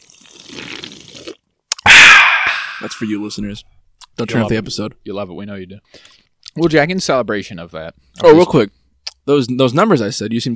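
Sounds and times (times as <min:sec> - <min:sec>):
wet slurping gulp of fizzy soda against the microphone: 0:00.0 - 0:01.9
sharp loud swallow or lip smack: 0:00.0 - 0:03.1
speech: 0:02.8 - 0:10.5.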